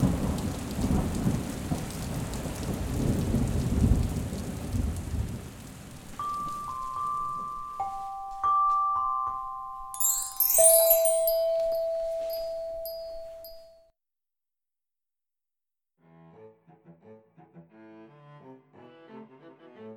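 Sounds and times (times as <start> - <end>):
deep rolling thunder: 0.0 - 6.7
dense heavy rainfall: 0.0 - 7.8
steady thin high-pitched tones: 6.2 - 13.7.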